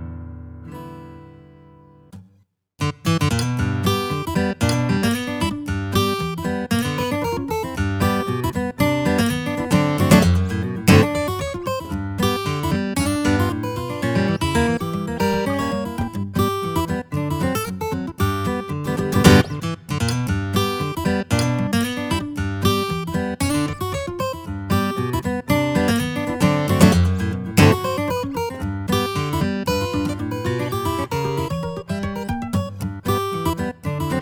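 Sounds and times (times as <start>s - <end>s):
steel guitar: 2.8s - 34.2s.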